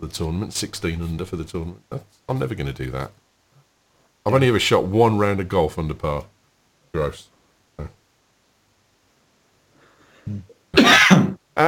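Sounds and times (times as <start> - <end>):
speech: 0.0 - 3.2, 4.2 - 6.3, 6.9 - 8.0, 10.3 - 10.5, 11.1 - 11.6
man coughing: 10.8 - 11.6.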